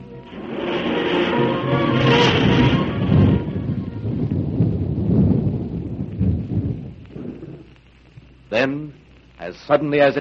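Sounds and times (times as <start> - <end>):
steady hiss of rain: 0.0 - 10.1
deep rolling thunder: 0.3 - 7.8
speech: 9.6 - 10.1.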